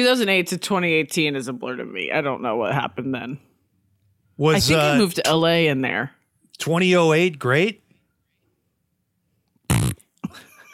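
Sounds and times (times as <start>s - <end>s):
speech: 0.0s - 3.5s, 4.4s - 7.8s
fart into a microphone: 9.7s - 10.1s.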